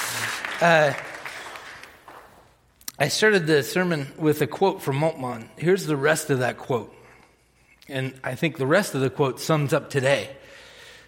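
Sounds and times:
church audience clapping during an Easter service: 0:00.0 - 0:02.6
speech: 0:00.6 - 0:01.1, 0:03.0 - 0:07.0, 0:07.9 - 0:10.6.

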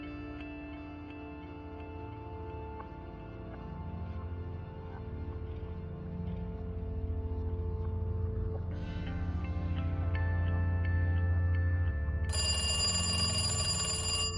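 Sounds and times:
steady low drone: 0:01.3 - 0:12.3
telephone ringing in a dimly lit office: 0:12.3 - 0:14.3.

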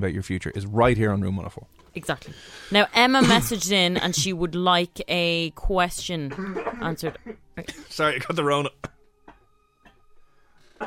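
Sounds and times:
speech: 0:00.0 - 0:08.9
coughs into an elbow: 0:03.2 - 0:04.3, 0:06.3 - 0:10.0.

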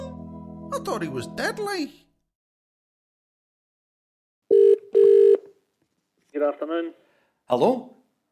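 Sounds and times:
speech: 0:00.9 - 0:02.1, 0:06.3 - 0:08.0
telephone ringing with electronic trills: 0:04.5 - 0:05.5.

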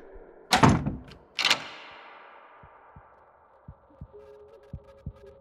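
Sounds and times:
door shutting: 0:00.5 - 0:02.5.

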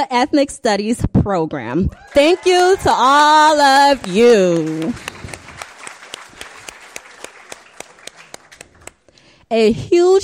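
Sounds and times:
speech: 0:00.0 - 0:05.2, 0:09.5 - 0:10.2
audience applause from a modest crowd at a campus event: 0:01.9 - 0:09.1
sharper individual claps: 0:03.5 - 0:09.2.

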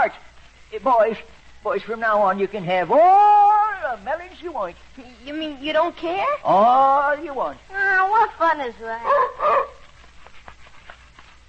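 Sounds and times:
speech: 0:00.0 - 0:09.7
dog barking: 0:09.0 - 0:09.8.

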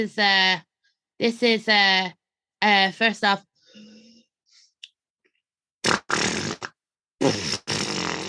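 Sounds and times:
speech: 0:00.0 - 0:03.9
deep loud sputtering fart noise: 0:05.8 - 0:08.2.

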